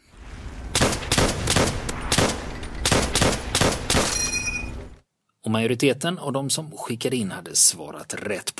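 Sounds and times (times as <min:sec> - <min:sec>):
M1 Garand rifle firing: 0:00.7 - 0:04.4
brief bright metallic ring: 0:04.1 - 0:04.8
speech: 0:05.4 - 0:08.5.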